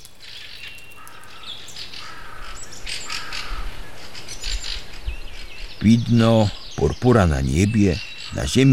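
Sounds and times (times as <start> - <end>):
soft outdoor hiss: 0.0 - 8.7
thrushes singing in a dawn chorus: 0.0 - 8.7
speech: 5.8 - 8.7.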